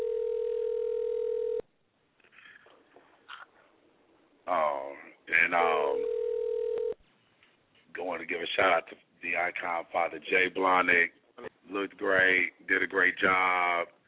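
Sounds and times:
telephone dial tone: 0.0 - 1.6, 6.0 - 7.0
speech: 8.2 - 14.0.

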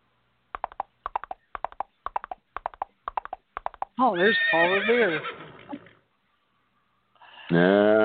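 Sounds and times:
horse hooves clip-clopping on a hard surface: 0.6 - 4.0
speech: 4.0 - 5.4, 7.5 - 8.0.

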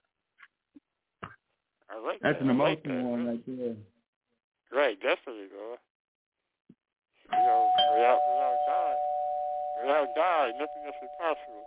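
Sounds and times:
speech: 1.9 - 3.9, 4.7 - 5.9, 7.3 - 8.7, 9.8 - 11.6
electronic ringing tone of an incoming phone call chime: 7.4 - 11.6.

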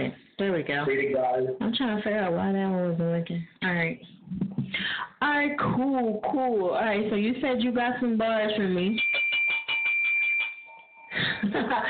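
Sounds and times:
speech: 0.0 - 9.1, 11.4 - 11.8
bell rung as a show cue in a fast rattling trill: 9.0 - 11.4
laughter: 11.1 - 11.8.

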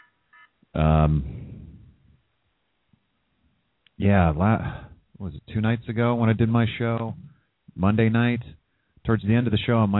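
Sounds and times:
short electronic alarm tone with buzzy harmonic note: 0.0 - 0.5
speech: 0.7 - 1.4, 4.0 - 9.9.

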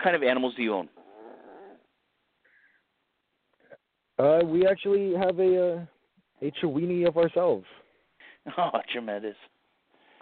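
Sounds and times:
speech: 0.0 - 1.0, 4.2 - 7.8, 8.4 - 9.5
small dogs growling and snarling on a couch: 0.9 - 1.9.

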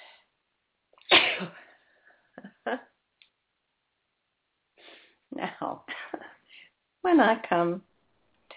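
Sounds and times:
woman sneezing: 1.0 - 1.7
speech: 1.4 - 1.6, 2.6 - 2.9, 7.1 - 7.9
short sniffs or mouth clicks: 4.8 - 5.2.

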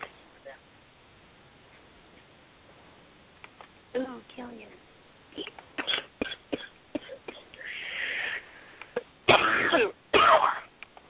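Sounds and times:
speech: 4.0 - 5.6
person clearing throat: 5.4 - 7.5, 9.3 - 10.7
person coughing: 5.4 - 7.5, 9.3 - 10.7.

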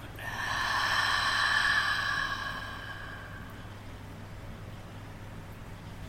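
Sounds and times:
slow steady exhale through the nose during a guided breathing exercise: 0.2 - 3.8.

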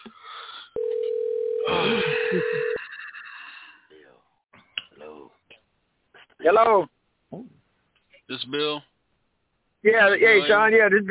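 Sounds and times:
telephone line tone while a caller is connected to a show: 0.8 - 2.8
speech: 1.8 - 2.8, 6.4 - 7.5, 8.3 - 8.9, 9.8 - 11.0.

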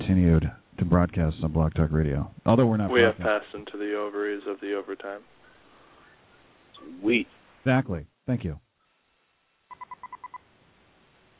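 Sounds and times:
low steady hiss: 0.0 - 11.3
speech: 0.1 - 5.4, 6.8 - 8.6
telephone touch-tone dialing beeps: 9.7 - 10.4.

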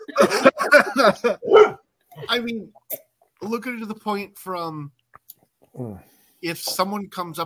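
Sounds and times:
laughter: 0.0 - 1.5
speech: 0.2 - 1.7, 2.3 - 5.0, 5.8 - 7.4
dog barking: 1.4 - 1.8.

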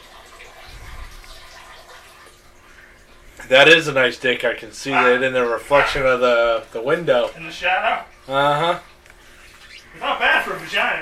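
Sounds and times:
water running from a sink tap: 0.0 - 11.0
speech: 3.5 - 8.9, 10.0 - 11.0.

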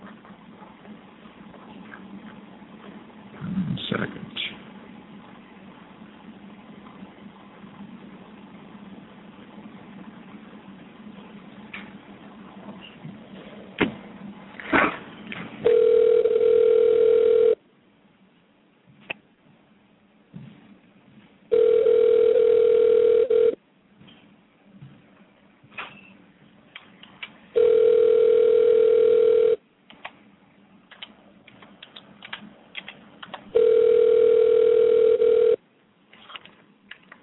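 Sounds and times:
telephone line tone beeps while placing a call: 15.6 - 17.6, 21.5 - 23.6, 27.6 - 29.6, 33.6 - 35.6.

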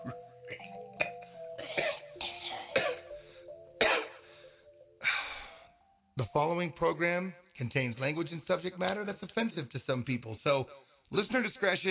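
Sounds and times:
person forced coughing: 0.0 - 3.2, 3.8 - 4.2
speech: 6.2 - 11.8.

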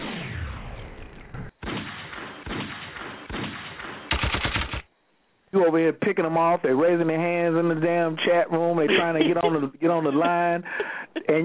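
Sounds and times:
gunfire sound effects: 0.0 - 4.9
rapid machine-gun-like rattle: 4.1 - 4.9
speech: 5.6 - 11.4
laughter: 8.8 - 11.4.

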